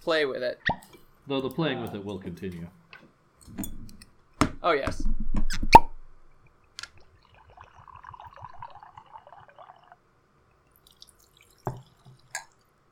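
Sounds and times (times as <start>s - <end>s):
speech: 0.0s - 2.8s, 4.6s - 5.2s
Scotch whisky glugging into a glass: 7.0s - 12.6s.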